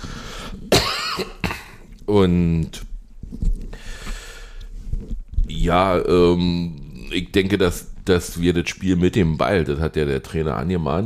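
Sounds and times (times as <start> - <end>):
person coughing: 0.7 - 1.8
speech: 2.1 - 2.8, 5.6 - 11.0.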